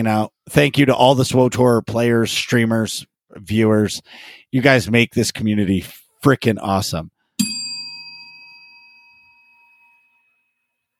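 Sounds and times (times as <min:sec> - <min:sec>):
speech: 0:00.0 - 0:07.6
bright bell ding with long metallic tone: 0:07.4 - 0:10.8.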